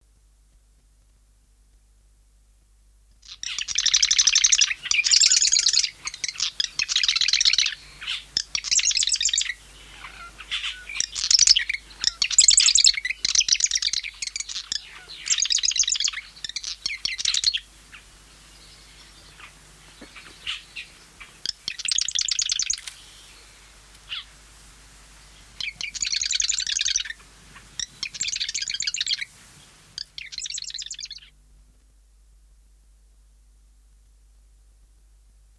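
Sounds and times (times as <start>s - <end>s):
marsh wren singing: 3.2s - 24.3s, 25.2s - 31.4s.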